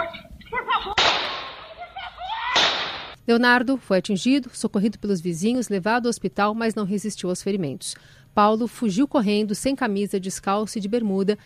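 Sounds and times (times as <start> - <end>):
laughter: 0.6 - 2.6
gunshot fired from inside a house: 1.0 - 1.6, 2.5 - 3.2
speech: 3.3 - 11.4.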